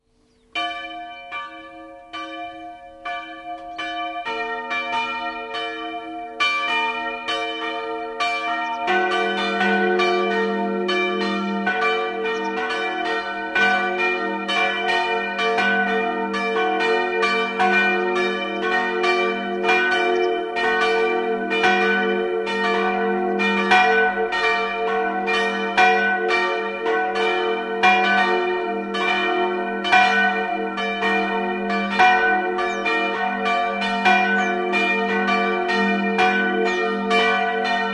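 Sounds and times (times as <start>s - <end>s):
bells ringing: 0.6s - 37.9s.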